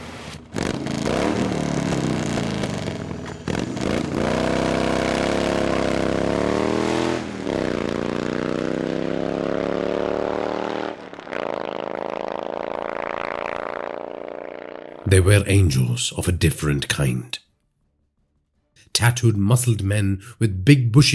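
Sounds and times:
engine roar of dozens of Harley-Davidson motorcycles riding together: 0.0s - 15.4s
speech: 15.1s - 17.4s, 19.0s - 21.1s.

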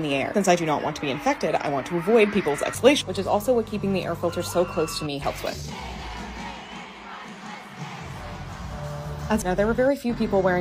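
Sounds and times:
concert crowd screaming and shouting: 0.0s - 3.2s, 4.1s - 8.4s
speech: 0.0s - 6.0s, 9.3s - 10.5s.

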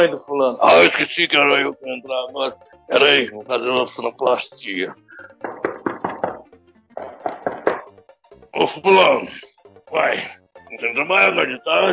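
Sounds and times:
speech: 0.0s - 5.6s, 8.6s - 11.9s
firm knocking on a bathroom door: 5.3s - 8.1s.

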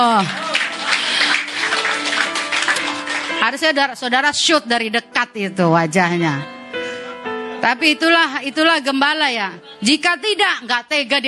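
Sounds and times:
speech: 0.0s - 0.5s, 3.4s - 6.6s, 7.6s - 11.2s
audience applauding: 0.0s - 3.6s.

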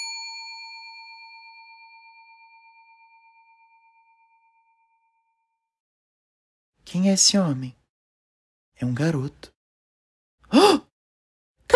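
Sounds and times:
bakery shop door bell ding: 0.0s - 4.5s
speech: 6.9s - 7.8s, 8.8s - 9.5s.

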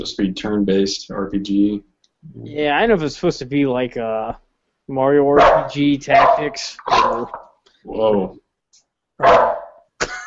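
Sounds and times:
speech: 0.0s - 8.4s, 9.2s - 9.5s
dog barking: 5.4s - 7.5s, 9.2s - 9.9s.

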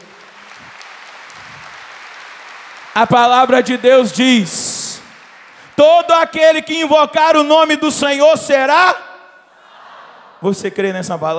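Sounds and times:
crowd applauding: 0.0s - 8.2s
speech: 3.0s - 4.8s, 5.8s - 9.1s, 10.4s - 11.3s.

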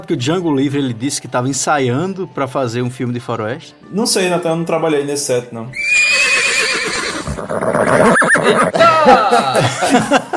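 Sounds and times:
speech: 0.0s - 6.5s, 7.4s - 10.2s
donkey braying: 5.8s - 8.9s
laughter: 8.3s - 10.3s.

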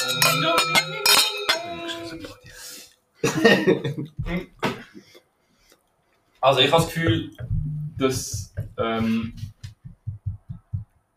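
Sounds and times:
glasses clinking in a toast: 0.0s - 2.6s
speech: 0.2s - 1.1s, 3.2s - 4.5s, 6.4s - 9.5s
laughter: 3.2s - 4.2s.

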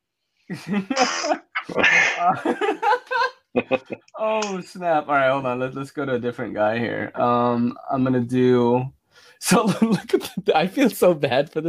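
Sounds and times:
laughter: 0.5s - 4.4s, 9.5s - 10.6s
speech: 0.5s - 11.6s
baby sneezing: 1.0s - 2.4s.

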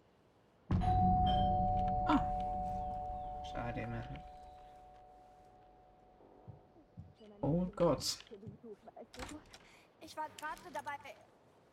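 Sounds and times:
doorbell ringing at the gate of a care home: 0.7s - 6.2s
speech: 3.6s - 4.4s, 7.4s - 8.4s, 9.1s - 11.3s.

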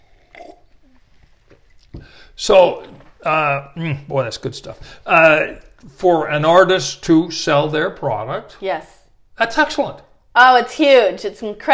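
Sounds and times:
person sipping soda: 0.0s - 3.2s
speech: 2.4s - 11.7s.

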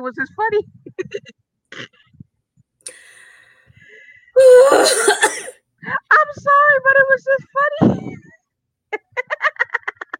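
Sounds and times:
speech: 0.0s - 2.1s, 4.4s - 8.2s
person coughing harshly with a wheezy edge: 4.6s - 5.6s.

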